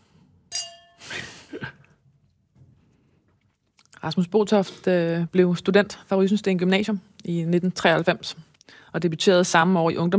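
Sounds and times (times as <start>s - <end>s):
glasses clinking in a toast: 0.5s - 1.3s
speech: 4.0s - 10.1s.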